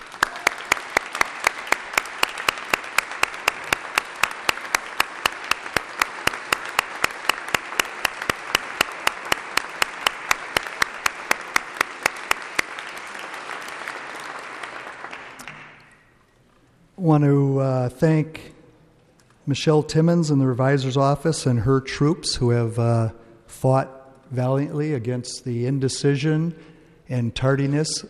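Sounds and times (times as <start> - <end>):
audience applauding in a room: 0.0 - 16.0
louder person clapping: 0.0 - 16.0
speech: 17.0 - 18.6, 19.5 - 28.0.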